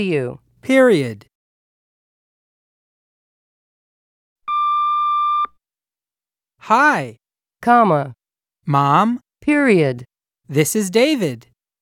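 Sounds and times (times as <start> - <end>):
speech: 0.0 - 1.3, 6.6 - 11.5
answering machine beep: 4.5 - 5.5.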